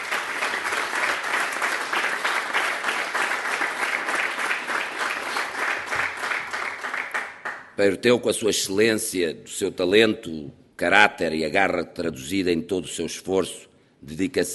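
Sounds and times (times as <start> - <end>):
audience applause for a football coach: 0.0 - 7.7
speech: 7.8 - 14.5.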